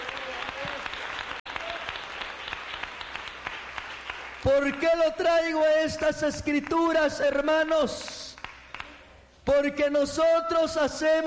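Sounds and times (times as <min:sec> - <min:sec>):
crowd clapping in sustained applause: 0:00.0 - 0:05.2
speech: 0:04.4 - 0:08.2, 0:09.5 - 0:11.2.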